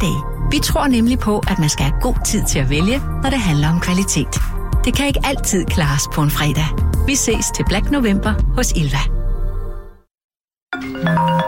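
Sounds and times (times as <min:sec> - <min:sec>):
speech: 0:00.0 - 0:09.2
telephone ringing with an electronic melodic tone: 0:10.8 - 0:11.4.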